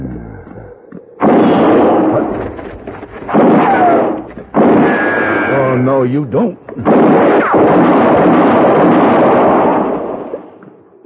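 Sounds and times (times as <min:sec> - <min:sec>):
gunshot during an armed confrontation over land near a well: 0:01.2 - 0:05.8, 0:06.8 - 0:10.6
speech: 0:06.0 - 0:09.3.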